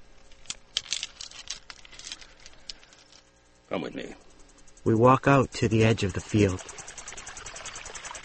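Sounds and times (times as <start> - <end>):
small stones poured into cupped hands: 0.3 - 3.2
speech: 3.7 - 6.8.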